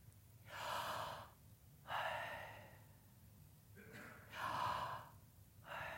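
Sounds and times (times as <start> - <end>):
low steady hum: 0.0 - 5.9
deep human breathing: 0.5 - 3.0, 4.3 - 5.9.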